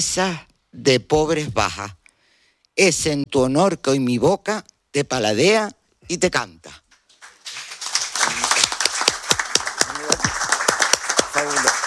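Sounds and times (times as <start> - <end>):
speech: 0.0 - 2.0, 2.8 - 6.8
small group applauding after a recited poem: 6.9 - 11.8.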